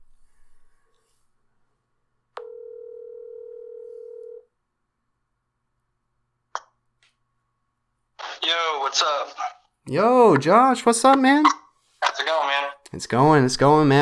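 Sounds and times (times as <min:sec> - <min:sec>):
phone ringback tone on a speakerphone call: 0:02.4 - 0:04.5
speech: 0:08.8 - 0:11.6, 0:12.2 - 0:14.0.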